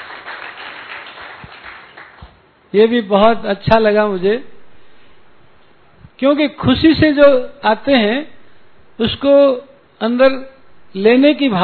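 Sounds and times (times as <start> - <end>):
audience applauding at a talk: 0.0 - 2.4
speech: 2.7 - 4.5, 6.2 - 8.3, 9.0 - 11.6.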